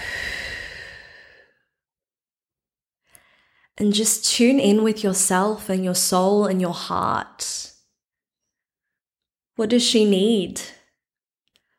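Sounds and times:
person taking a slow deep breath in and out: 0:00.0 - 0:01.7, 0:03.1 - 0:03.8
speech: 0:03.8 - 0:07.7, 0:09.6 - 0:10.8.

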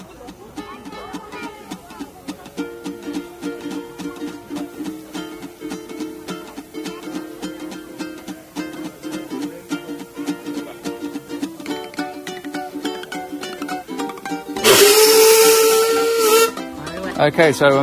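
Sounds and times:
burst of hissing steam: 0:00.1 - 0:16.9
steam locomotive mechanical chuffing: 0:14.6 - 0:16.6
speech: 0:17.2 - 0:17.8.

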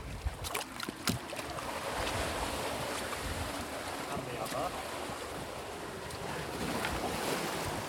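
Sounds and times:
gusts of wind buffeting the microphone: 0:00.0 - 0:00.6, 0:01.9 - 0:07.8
sea waves washing and surging: 0:00.0 - 0:07.8.

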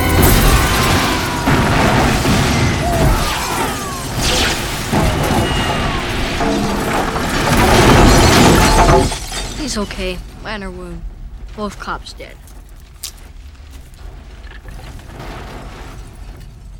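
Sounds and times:
bomb explosion with rumbling roar and crackling debris: 0:00.0 - 0:09.1
speech: 0:09.7 - 0:12.4.

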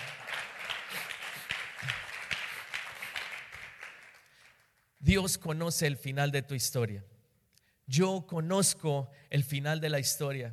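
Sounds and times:
audience applauding: 0:00.0 - 0:05.0
speech: 0:05.1 - 0:07.1, 0:07.9 - 0:10.5.

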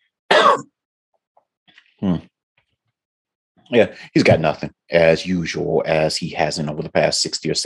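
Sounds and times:
person coughing: 0:00.3 - 0:00.7
speech: 0:03.7 - 0:07.6.

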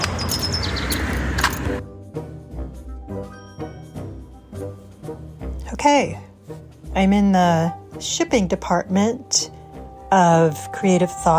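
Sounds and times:
birds chirping outdoors: 0:00.0 - 0:01.8
speech: 0:05.8 - 0:06.3, 0:06.9 - 0:09.5, 0:10.1 - 0:11.3.

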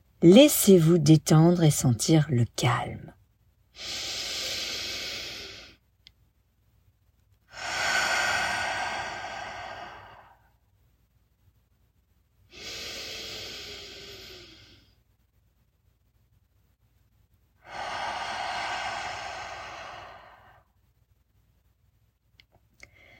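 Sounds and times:
speech: 0:00.2 - 0:03.2, 0:03.8 - 0:04.1
deep breaths in through the nose and out through the mouth: 0:03.8 - 0:05.8, 0:07.5 - 0:10.6, 0:12.5 - 0:15.0, 0:17.6 - 0:20.8.

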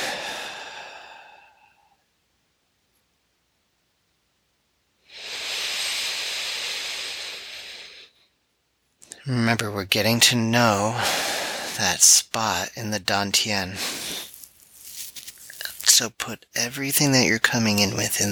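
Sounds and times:
slow deep breathing during a breathing exercise: 0:00.0 - 0:02.0, 0:05.1 - 0:08.3, 0:10.9 - 0:11.8, 0:13.7 - 0:15.9
speech: 0:09.3 - 0:14.2, 0:15.9 - 0:18.2.

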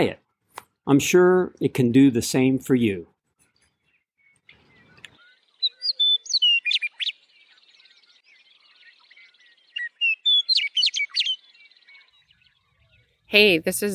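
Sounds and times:
speech: 0:00.0 - 0:00.2, 0:00.8 - 0:03.1, 0:13.3 - 0:13.9
wild birds chirping and twittering at a snowy swamp: 0:03.4 - 0:13.9.

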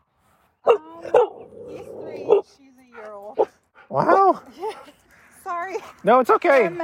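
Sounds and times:
dog barking: 0:00.6 - 0:01.4, 0:02.3 - 0:02.5
speech: 0:06.0 - 0:06.8.

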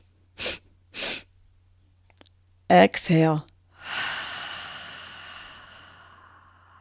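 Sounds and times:
quick nasal sniffs during a bunny-breath breathing exercise: 0:00.4 - 0:01.3
speech: 0:02.7 - 0:03.5.

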